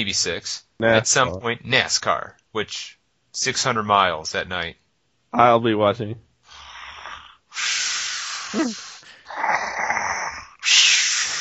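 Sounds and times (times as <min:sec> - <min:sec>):
speech: 0:00.0 - 0:06.3, 0:08.5 - 0:08.8
loud snoring: 0:06.5 - 0:11.4.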